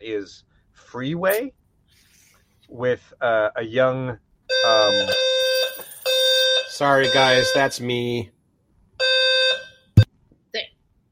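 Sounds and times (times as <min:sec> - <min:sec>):
speech: 0:00.1 - 0:01.6, 0:02.7 - 0:05.3, 0:06.8 - 0:08.4
fire alarm blaring: 0:04.5 - 0:08.0, 0:09.0 - 0:10.0.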